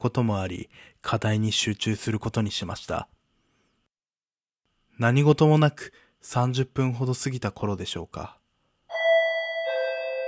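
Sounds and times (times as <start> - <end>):
speech: 0.0 - 3.2, 5.0 - 8.4
doorbell chime: 8.9 - 10.2.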